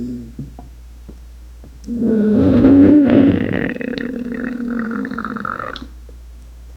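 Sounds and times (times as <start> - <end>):
belly rumbling from a laxative: 1.9 - 5.9.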